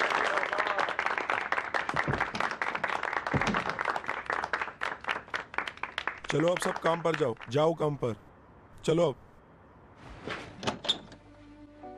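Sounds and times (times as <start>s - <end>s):
group applause: 0.0s - 7.7s
speech: 6.3s - 9.2s.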